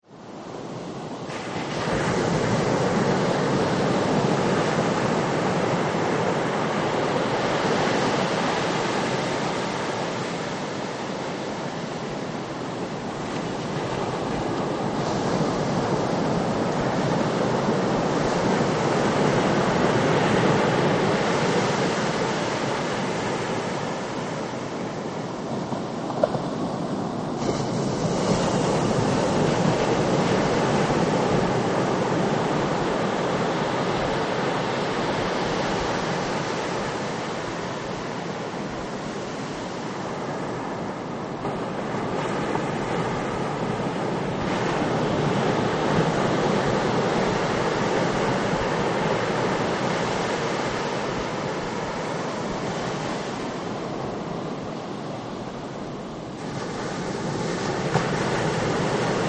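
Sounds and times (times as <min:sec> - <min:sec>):
ocean waves: 0:00.0 - 0:59.2.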